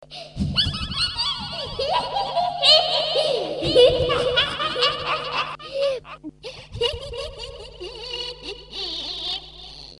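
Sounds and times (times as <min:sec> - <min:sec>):
witch laughing: 0:00.3 - 0:09.9.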